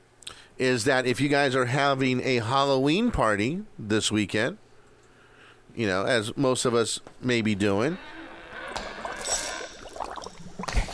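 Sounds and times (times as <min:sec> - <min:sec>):
speech: 0:00.6 - 0:04.6, 0:05.8 - 0:08.2
liquid bubbling and gurgling: 0:08.7 - 0:10.9.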